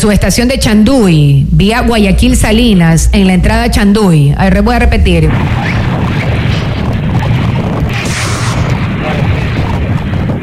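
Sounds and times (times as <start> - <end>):
speech: 0.0 - 6.1
loud explosion at electrical substation: 4.8 - 10.4
harsh crackling burst: 4.9 - 10.4.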